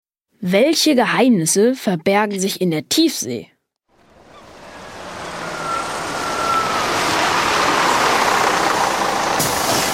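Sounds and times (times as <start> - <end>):
speech: 0.4 - 3.5
large bus engine rumbling: 3.9 - 9.9
thin bus brake squeal: 3.9 - 9.9.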